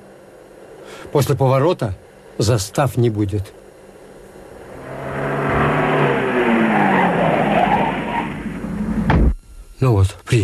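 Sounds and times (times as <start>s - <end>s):
speech: 1.0s - 3.6s
car engine humming as the car drives slowly and slows: 3.8s - 9.2s
car tires rumbling on the road: 4.4s - 9.1s.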